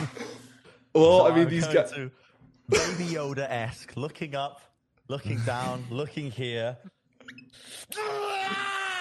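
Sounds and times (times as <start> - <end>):
speech: 1.0 - 8.6
person screaming in rage: 7.9 - 8.9.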